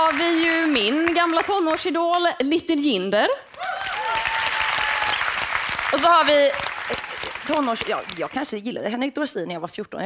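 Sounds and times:
crowd applauding: 0.0 - 1.9, 3.5 - 8.5
speech: 0.1 - 3.6, 5.9 - 6.7, 7.5 - 10.0.

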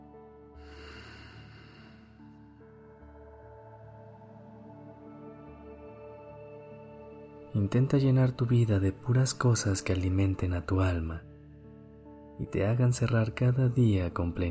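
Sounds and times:
gentle sustained music: 0.0 - 14.5
person breathing in and out during a guided meditation: 0.6 - 2.2
speech: 7.6 - 11.3, 12.4 - 14.5.

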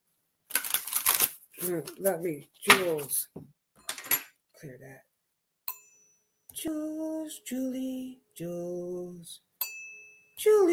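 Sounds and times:
about ten playing cards spilling out of a deck: 0.5 - 2.0
speech: 1.6 - 3.6, 4.6 - 5.1, 6.6 - 9.5, 10.4 - 10.7.

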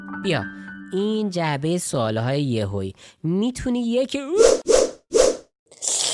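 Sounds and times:
speech: 0.2 - 4.7
chameleon tongue shooting out and snapping back: 5.7 - 6.1.

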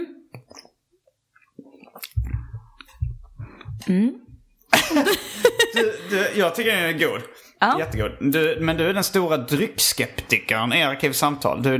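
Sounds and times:
person slurping and swallowing IPA beer: 0.2 - 4.5
wet mouth clicks: 0.2 - 4.7
speech: 3.8 - 4.2, 4.9 - 11.7
laughter: 4.7 - 6.4.

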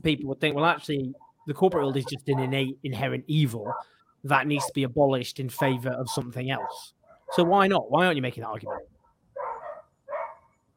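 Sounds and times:
speech: 0.0 - 8.9
dog barking: 1.2 - 2.7, 3.6 - 4.8, 5.6 - 7.5, 8.6 - 10.7.

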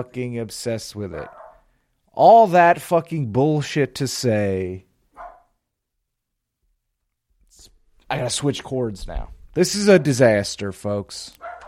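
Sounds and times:
speech: 0.0 - 1.4, 2.2 - 4.9, 8.1 - 11.6
dog barking: 1.2 - 1.6, 5.1 - 5.6, 11.4 - 11.6.

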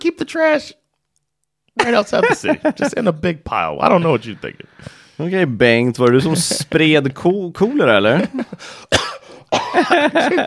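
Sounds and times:
speech: 0.3 - 0.8, 1.8 - 10.4
laughter: 1.8 - 3.1, 6.1 - 7.0, 8.0 - 8.7, 9.6 - 10.4
person coughing harshly with gurgling throat sounds: 8.7 - 10.4.

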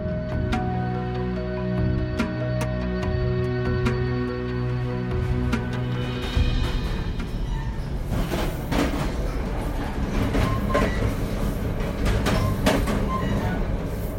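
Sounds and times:
low rumble inside a moving American commuter train: 0.0 - 14.1
commuter train wheels clacking and rattling over track joints: 5.5 - 14.1.

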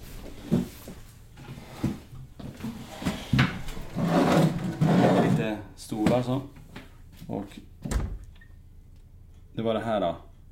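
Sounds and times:
rustling scrape: 0.0 - 5.6
pantry cupboard door being opened in a wooden house: 2.6 - 5.4
speech: 6.2 - 6.6, 7.3 - 7.7, 9.6 - 10.3.

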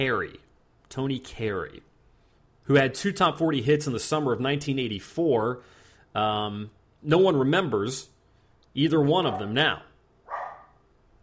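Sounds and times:
speech: 0.0 - 1.9, 2.7 - 8.1, 8.8 - 9.9
dog barking: 9.3 - 9.6, 10.2 - 10.8.

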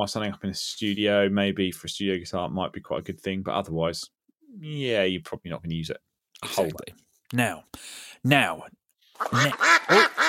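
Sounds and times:
speech: 0.0 - 10.2
duck quacking: 9.2 - 10.2.

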